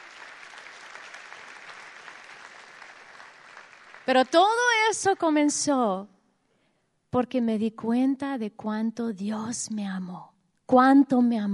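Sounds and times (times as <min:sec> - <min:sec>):
audience applause: 0:00.0 - 0:04.5
speech: 0:04.1 - 0:06.2, 0:07.1 - 0:11.5.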